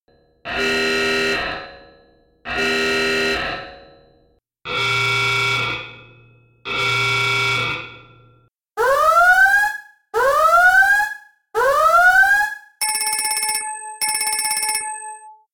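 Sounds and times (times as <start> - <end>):
alarms: 0.5 - 15.5.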